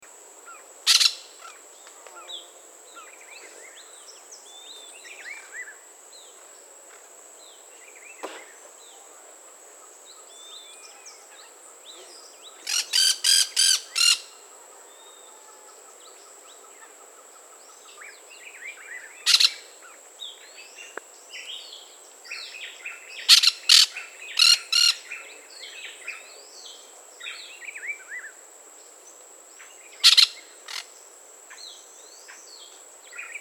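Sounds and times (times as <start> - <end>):
brown-throated parakeet calling: 0.9 - 1.3, 12.6 - 14.4, 19.3 - 19.6, 23.3 - 25.1, 30.0 - 30.9.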